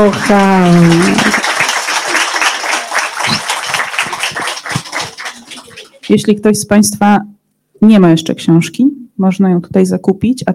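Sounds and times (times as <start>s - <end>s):
speech: 0.0s - 1.4s, 6.1s - 10.5s
audience applause at a book event: 0.0s - 6.2s.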